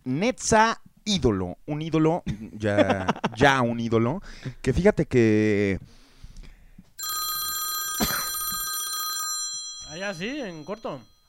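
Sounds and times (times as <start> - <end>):
speech: 0.2 - 6.0, 9.9 - 11.1
telephone ringing with a loud continuous bell tone: 7.0 - 11.2.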